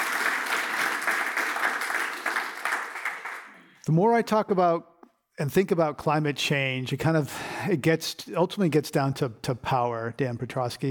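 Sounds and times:
audience applause: 0.0 - 3.7
speech: 3.9 - 10.9.

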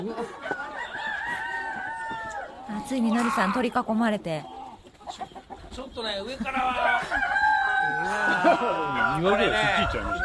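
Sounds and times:
speech: 0.0 - 0.5, 2.9 - 5.2, 6.0 - 7.3, 8.0 - 10.2
flock of chickens clucking: 0.0 - 10.2
long drawn-out rooster crow: 0.4 - 2.5, 6.8 - 10.2
laughter: 6.3 - 10.1.

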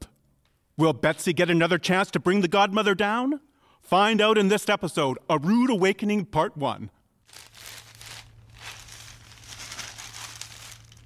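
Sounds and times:
speech: 0.8 - 7.5
low steady hum: 7.0 - 11.0
newspaper pages rustling and crinkling: 7.3 - 11.0.

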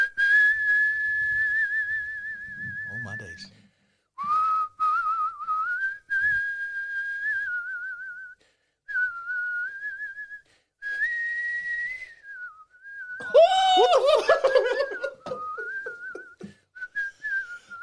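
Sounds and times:
person whistling a bright warbling tune with vibrato: 0.0 - 3.5, 4.2 - 17.8
speech: 3.1 - 3.6
laughter: 13.2 - 16.5.

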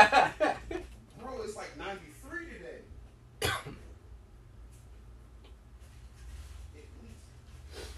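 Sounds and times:
laughter: 0.0 - 0.9
low steady hum: 0.0 - 7.9
single sharp loud cough: 3.4 - 3.9.

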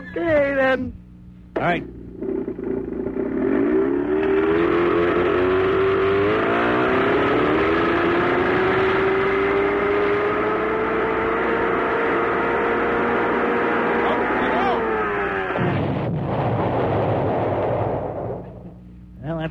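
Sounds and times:
speech: 0.2 - 1.0, 1.6 - 3.2
outboard engine blowing up: 1.5 - 18.9
small outboard motor run without water screaming at high revs: 1.9 - 15.8.

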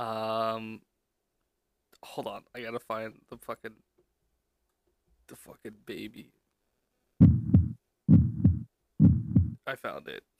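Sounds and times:
speech: 2.0 - 3.9, 5.3 - 6.4, 9.7 - 10.3
heartbeat sound effect: 7.2 - 9.6.

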